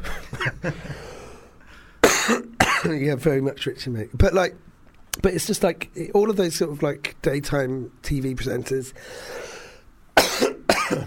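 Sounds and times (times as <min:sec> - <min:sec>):
speech: 0:00.6 - 0:01.1, 0:02.3 - 0:09.5
person coughing with a phlegmy tail: 0:02.0 - 0:03.0, 0:10.2 - 0:11.0.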